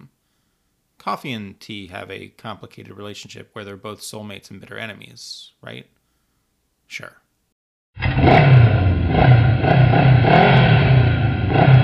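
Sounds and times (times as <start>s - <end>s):
speech: 1.0s - 6.0s, 6.9s - 7.2s
motorcycle engine revving: 8.0s - 11.8s.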